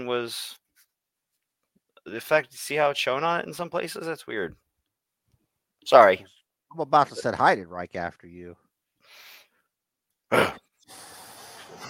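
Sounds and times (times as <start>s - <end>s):
speech: 0.0s - 0.6s, 2.1s - 4.6s, 5.8s - 9.3s
heavy breathing into a microphone: 9.0s - 9.6s, 10.8s - 11.8s.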